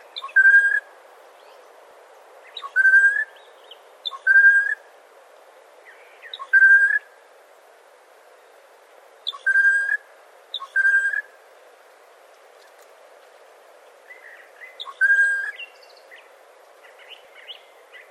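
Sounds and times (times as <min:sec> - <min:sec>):
soft background hiss: 0:00.0 - 0:18.0
unidentified bird giving short clear whistled notes: 0:00.2 - 0:00.8, 0:02.6 - 0:03.3, 0:04.1 - 0:04.8, 0:06.3 - 0:07.0, 0:09.3 - 0:10.0, 0:10.6 - 0:11.3, 0:14.8 - 0:15.7.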